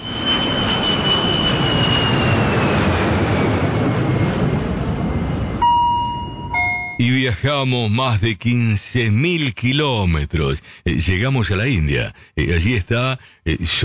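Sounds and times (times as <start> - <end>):
Boeing airliner jet engines roaring during takeoff: 0.0 - 6.7
speech: 7.3 - 13.8.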